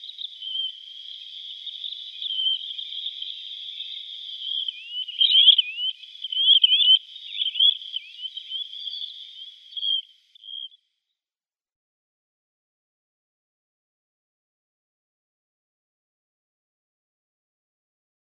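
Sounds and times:
Least Sandpiper flock calling: 0.0 - 10.7.

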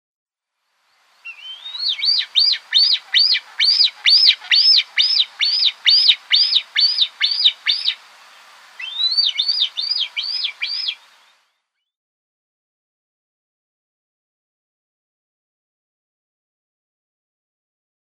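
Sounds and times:
Lammergeier nestling: 1.3 - 8.0, 8.8 - 11.0.

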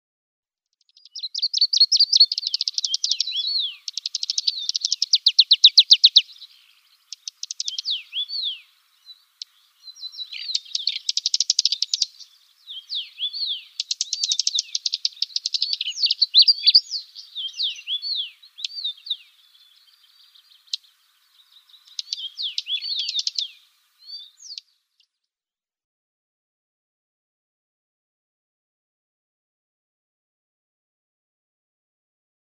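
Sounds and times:
Dusky Warbler calls: 0.9 - 24.7.

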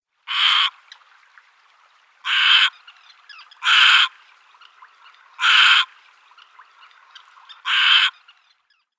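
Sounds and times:
Little Egret flight calls: 2.2 - 8.5.

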